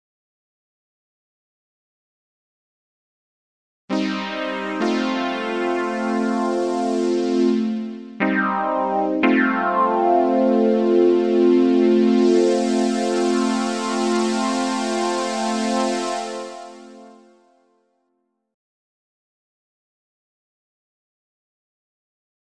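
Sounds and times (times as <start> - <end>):
Moog synthesizer pad: 3.9 - 17.6.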